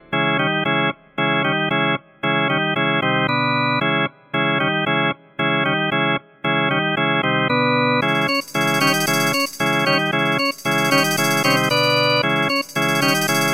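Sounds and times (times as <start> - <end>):
Vox Continental combo organ: 0.0 - 13.5.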